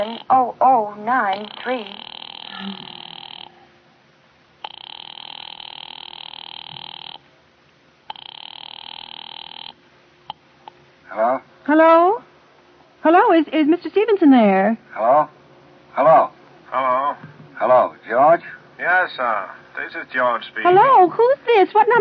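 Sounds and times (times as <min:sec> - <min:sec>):
telephone line ringing tone buzzing: 0:00.0 - 0:00.4, 0:01.1 - 0:03.7, 0:04.6 - 0:07.2, 0:08.1 - 0:09.8
speech: 0:00.0 - 0:03.0, 0:11.7 - 0:12.2, 0:13.0 - 0:15.4, 0:16.0 - 0:22.0.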